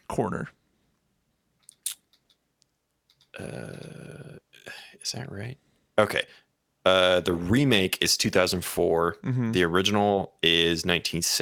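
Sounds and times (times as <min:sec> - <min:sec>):
speech: 0:00.1 - 0:00.6, 0:03.4 - 0:04.2, 0:05.0 - 0:11.4
keyboard clicks: 0:03.0 - 0:03.4.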